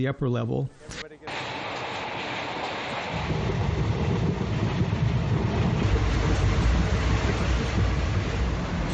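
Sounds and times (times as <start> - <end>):
speech: 0.0 - 1.1
sleeper train rolling along the rails: 1.3 - 8.9.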